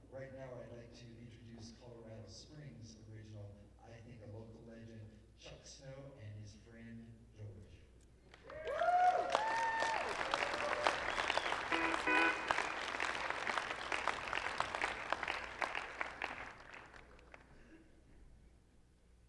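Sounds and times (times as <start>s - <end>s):
crowd applause: 8.3s - 17.8s
whistles and cheers: 8.4s - 15.9s.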